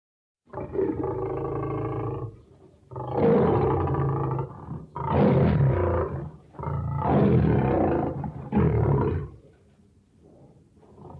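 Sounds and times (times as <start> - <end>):
lion roaring: 0.5 - 9.4.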